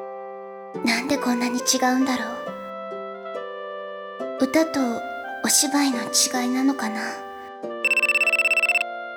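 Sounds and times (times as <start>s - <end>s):
speech: 0.8s - 2.5s, 4.4s - 7.3s
electronic phone ringtone ringing: 7.9s - 8.8s.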